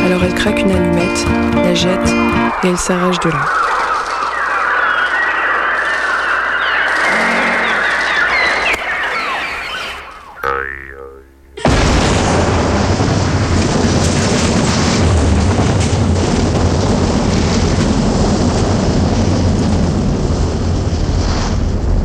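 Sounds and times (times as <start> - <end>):
speech: 0.1 - 3.9
dense chorus of bird calls: 2.6 - 11.3
loud sustained explosive boom: 11.6 - 22.0.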